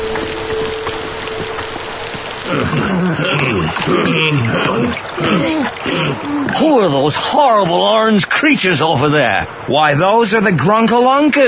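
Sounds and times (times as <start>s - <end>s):
boat engine chugging along a river: 0.0s - 5.8s
constant wash of rushing water from a boat on a river: 0.0s - 11.4s
speech: 3.2s - 11.4s.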